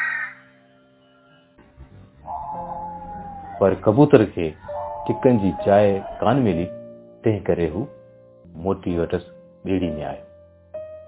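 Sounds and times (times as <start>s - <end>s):
crow cawing: 0.0s - 0.5s, 2.2s - 6.4s
low rumbling: 1.6s - 8.7s
speech: 3.6s - 8.0s, 8.6s - 10.3s.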